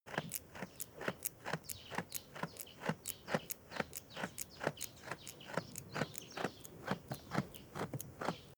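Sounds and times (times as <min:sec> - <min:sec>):
goat chewing: 0:00.1 - 0:08.5.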